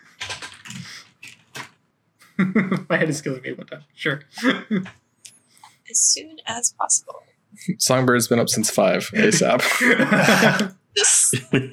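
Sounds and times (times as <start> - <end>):
typing on a computer keyboard: 0.2 - 1.8
laughter: 2.3 - 3.8, 4.4 - 4.9, 7.8 - 11.7
speech: 2.4 - 5.0, 5.9 - 11.7.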